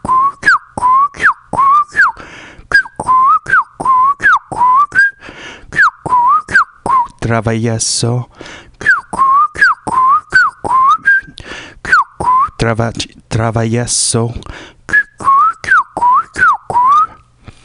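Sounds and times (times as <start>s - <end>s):
person whistling a tune: 0.0s - 7.2s, 8.8s - 12.6s, 14.9s - 17.3s
speech: 7.3s - 8.7s, 12.6s - 14.7s.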